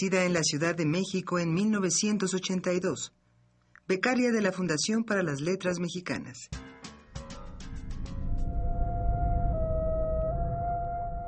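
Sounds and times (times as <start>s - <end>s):
speech: 0.0s - 3.2s, 3.9s - 6.7s
ambulance siren wailing: 8.3s - 11.2s.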